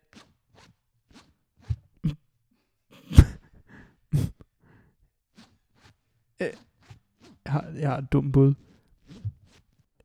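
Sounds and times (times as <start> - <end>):
clothing zipper being pulled: 0.0 - 2.2, 5.4 - 8.0, 8.6 - 9.9
speech: 6.4 - 6.7, 7.5 - 8.7.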